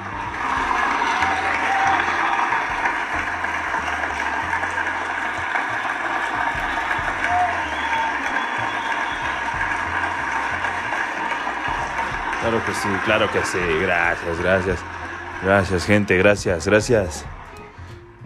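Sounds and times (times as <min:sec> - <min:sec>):
large audience applauding: 0:00.0 - 0:18.2
murmuring voices: 0:00.0 - 0:18.2
speech: 0:12.5 - 0:17.3.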